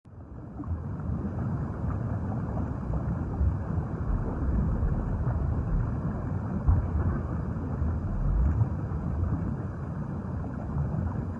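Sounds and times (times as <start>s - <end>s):
groundwater flowing underground: 0.0s - 11.3s.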